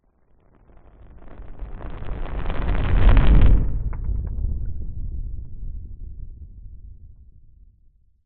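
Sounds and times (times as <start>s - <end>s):
large designed fireball passing by: 1.0s - 5.2s.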